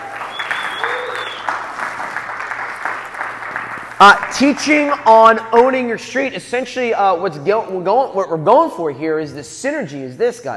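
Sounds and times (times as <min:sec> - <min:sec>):
audience applause: 0:00.0 - 0:05.1
speech: 0:04.0 - 0:10.5.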